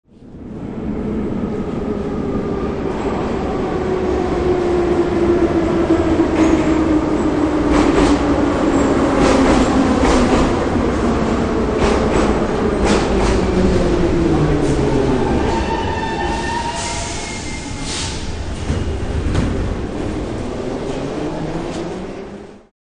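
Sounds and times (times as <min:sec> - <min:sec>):
Russian underground metro train: 0:00.1 - 0:22.7.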